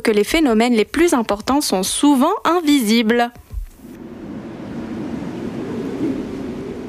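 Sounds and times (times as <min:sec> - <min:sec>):
speech: 0:00.0 - 0:03.4
roaring polar wind in Antarctica: 0:03.5 - 0:06.8.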